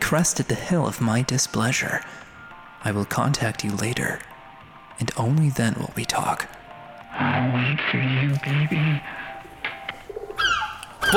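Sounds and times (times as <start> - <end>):
speech: 0.1 - 4.3, 5.0 - 6.6, 7.2 - 9.2
birds cooing like pigeons or doves: 8.3 - 11.1
bird chirps: 10.2 - 11.1.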